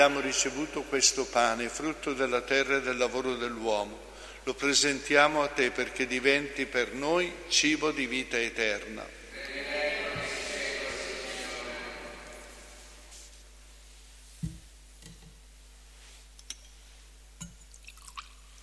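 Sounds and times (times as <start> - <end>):
speech: 0.0 - 9.2
steady hum: 0.0 - 18.6
water trickling into wine in a chalice during a Mass: 17.4 - 18.6.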